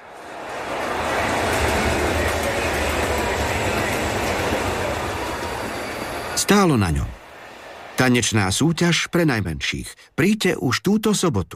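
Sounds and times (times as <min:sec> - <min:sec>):
train rumbling at a railway station: 0:00.0 - 0:07.3
speech: 0:06.4 - 0:07.1, 0:08.0 - 0:11.5.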